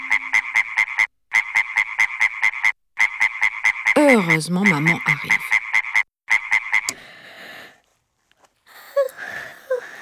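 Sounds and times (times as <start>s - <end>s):
frog alarm clock croaking: 0.0s - 7.0s
speech: 4.1s - 5.5s.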